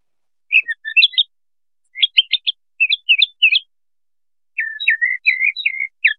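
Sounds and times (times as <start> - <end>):
small songbird singing short chirpy phrases: 0.4 - 3.8, 4.4 - 6.1.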